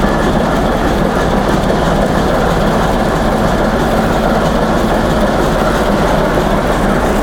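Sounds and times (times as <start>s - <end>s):
diesel engine: 0.0s - 7.2s.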